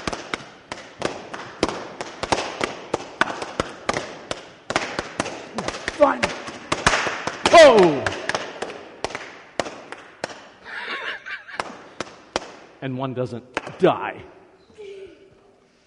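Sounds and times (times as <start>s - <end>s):
balloons popped with a nail as a mock fireworks display: 0.0s - 10.6s, 11.2s - 12.8s
speech: 6.0s - 6.3s, 7.6s - 8.0s, 12.8s - 14.4s
person exclaiming: 7.5s - 8.1s
laughter: 10.6s - 11.9s.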